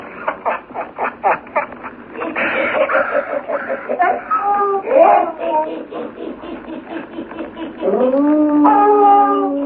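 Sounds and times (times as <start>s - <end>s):
laughter: 0.0s - 8.2s
frightened dogs howling and whimpering: 3.9s - 6.2s, 7.6s - 9.6s
frightened dogs yelping and whining: 4.0s - 5.5s, 7.8s - 9.6s.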